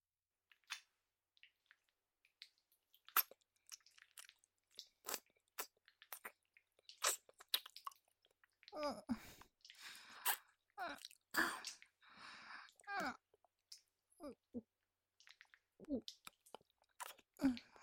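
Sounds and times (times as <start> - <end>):
wet licking and sucking mouth sounds of oral sex: 0.5 - 8.8, 9.4 - 12.0, 15.2 - 17.7.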